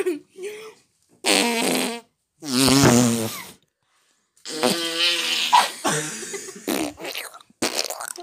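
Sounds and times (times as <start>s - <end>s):
fart noises made with the mouth: 1.2s - 3.6s, 4.4s - 5.8s, 6.6s - 8.2s.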